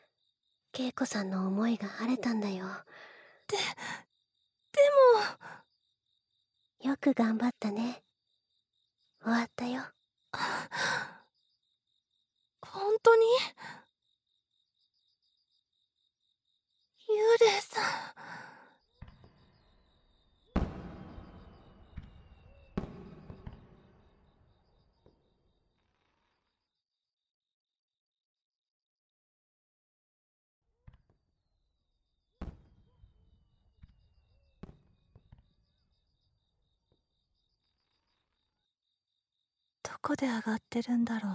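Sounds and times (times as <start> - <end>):
crickets chirping: 0.0 - 27.2, 33.3 - 41.3
speech: 0.8 - 4.0, 4.8 - 5.6, 6.8 - 8.0, 9.2 - 11.2, 12.6 - 13.8, 17.1 - 18.5, 40.0 - 41.3
distant fireworks bursting with crackling tails: 19.0 - 26.2, 32.4 - 35.8.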